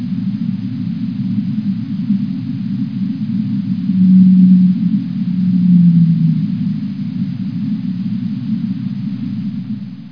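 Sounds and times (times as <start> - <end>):
continuous band of deep rumbling noise: 0.0 - 10.0
blue whale call: 3.6 - 8.3.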